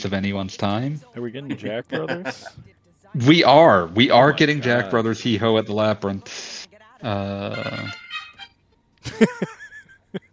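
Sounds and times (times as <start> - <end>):
speech: 0.0 - 8.0, 9.0 - 9.6
laughter: 1.5 - 2.7, 4.0 - 5.5, 9.0 - 10.3
phone ringtone with bright melodic electronic tones: 7.4 - 8.8.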